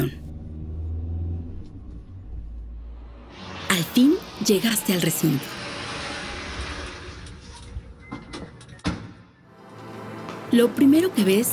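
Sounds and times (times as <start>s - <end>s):
car engine rumbling while driving: 0.0s - 8.1s
speech: 3.7s - 5.6s, 10.5s - 11.5s.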